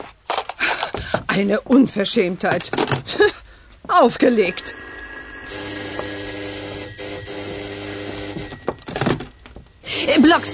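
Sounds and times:
speech: 1.4s - 4.8s, 10.0s - 10.5s
doorbell ringing at a front door: 4.2s - 10.5s.

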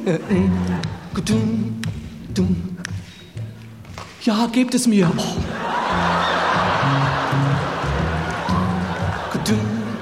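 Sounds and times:
laughter: 0.0s - 1.1s, 5.4s - 9.9s
speech: 0.0s - 2.8s, 4.2s - 5.5s
sustained singing voice: 0.0s - 3.1s, 6.8s - 9.9s
audience snapping fingers in a steady beat: 0.6s - 2.2s, 2.8s - 4.2s, 6.2s - 9.6s.

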